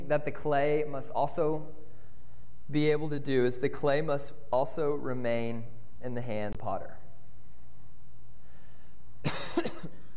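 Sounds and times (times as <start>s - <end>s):
low steady hum: 0.0s - 10.1s
speech: 0.1s - 1.8s, 2.7s - 7.0s
person coughing and clearing a scratchy throat: 9.2s - 10.1s.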